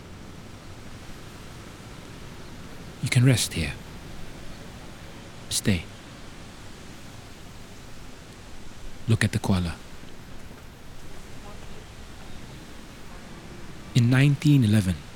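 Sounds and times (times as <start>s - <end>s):
two rivers flowing together: 0.0s - 15.1s
speech: 3.0s - 3.8s, 5.5s - 5.9s, 9.1s - 9.8s, 14.0s - 15.1s.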